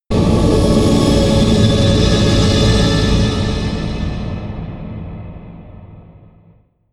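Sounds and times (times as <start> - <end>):
turbine whoosh swish: 0.1 - 6.6.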